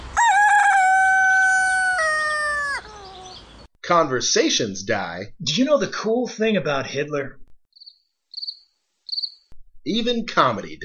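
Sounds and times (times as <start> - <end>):
rooster crowing: 0.1 - 3.4
speech: 3.9 - 7.4, 9.8 - 10.8.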